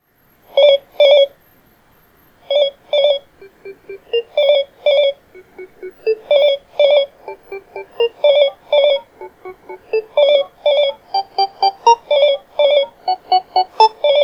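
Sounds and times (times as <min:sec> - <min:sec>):
Snom M3 phone ringing: 0:00.6 - 0:01.4, 0:02.5 - 0:14.2.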